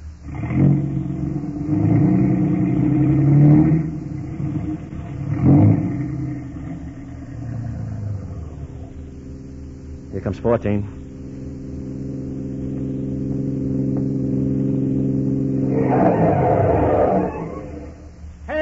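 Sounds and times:
car engine revving as the car moves across a road: 0.0 - 18.5
speech: 10.3 - 11.0.

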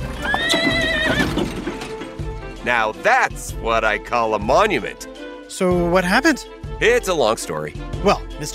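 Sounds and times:
horse neighing: 0.0 - 2.0
horse hooves clip-clopping: 0.0 - 2.6
speech: 2.7 - 8.5.

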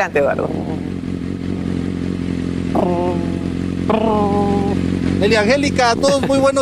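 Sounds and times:
speech: 0.0 - 1.0, 2.8 - 4.6, 5.2 - 6.6
motorcycle engine idling: 0.0 - 6.6.

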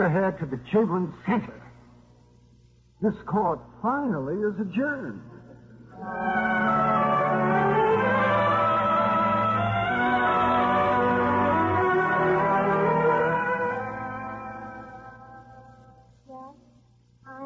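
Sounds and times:
speech: 0.0 - 1.7, 3.0 - 5.3, 6.0 - 6.5
church bells pealing: 6.0 - 15.6.

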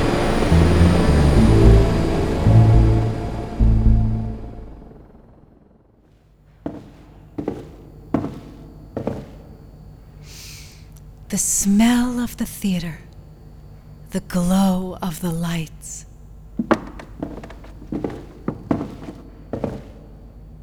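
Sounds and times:
aircraft landing roar: 0.0 - 5.7
speech: 11.4 - 13.1, 14.1 - 16.0.

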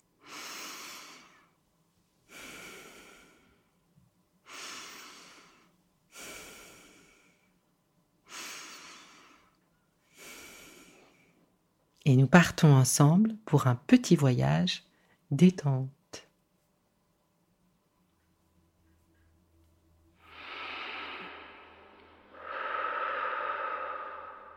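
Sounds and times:
deep slow breaths: 0.2 - 1.6, 2.3 - 3.8, 4.4 - 7.6, 8.3 - 11.5, 20.2 - 24.5
speech: 12.1 - 16.2.

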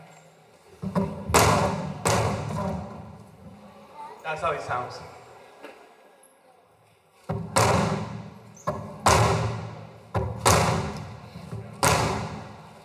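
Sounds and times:
hammer striking a mural: 1.0 - 2.8, 7.3 - 12.6
speech: 4.3 - 5.2.

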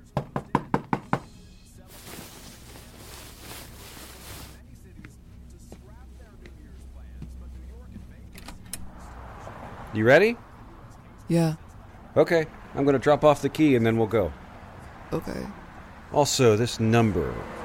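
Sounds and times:
sharp knocks on a door: 0.1 - 1.3
vehicle-like sounds: 0.9 - 17.6
speech: 10.0 - 10.5, 11.3 - 11.6, 12.2 - 14.4, 15.1 - 17.6.

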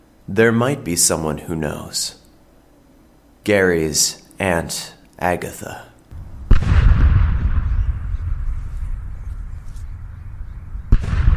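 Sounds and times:
speech: 0.3 - 2.2, 3.4 - 5.9
deep cannon boom: 6.1 - 11.3.

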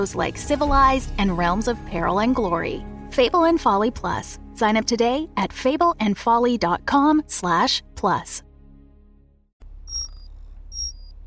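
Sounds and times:
speech: 0.0 - 8.5
internal conduction wake-up alarm electronic chimes: 9.9 - 11.1.

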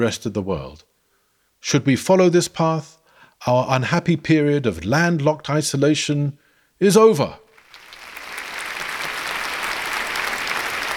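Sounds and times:
speech: 0.0 - 0.9, 1.6 - 7.4
crowd applauding: 7.5 - 10.9.

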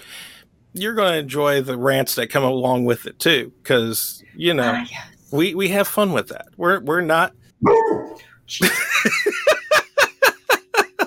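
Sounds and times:
speech: 0.8 - 9.6
dog barking: 7.6 - 8.2
laughter: 8.6 - 11.0.

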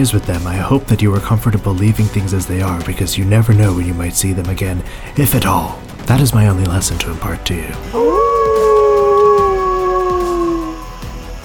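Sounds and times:
speech: 0.0 - 8.2
wolf howling: 7.9 - 11.1.

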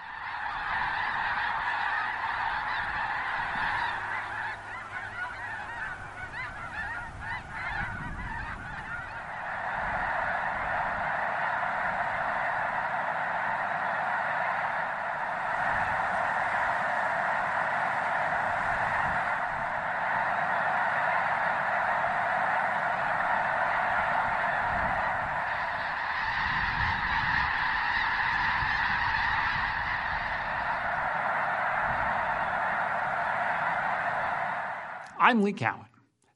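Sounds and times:
huge flock of migrating geese honking at a lake: 0.0 - 35.5
speech: 35.3 - 35.9.

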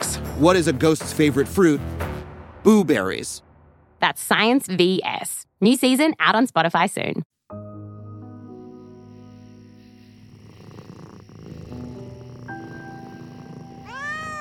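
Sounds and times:
speech: 0.4 - 2.0, 2.6 - 7.6
cat purring loudly: 9.1 - 14.4
cat meowing: 13.6 - 14.4.

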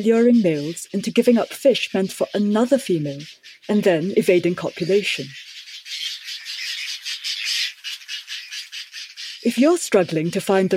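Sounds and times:
speech: 0.0 - 5.5, 9.4 - 10.7
whiskered tern calls: 0.0 - 10.7.

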